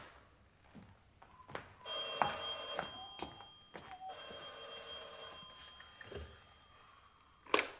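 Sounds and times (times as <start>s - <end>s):
old-style telephone bell ringing: 1.9s - 7.7s.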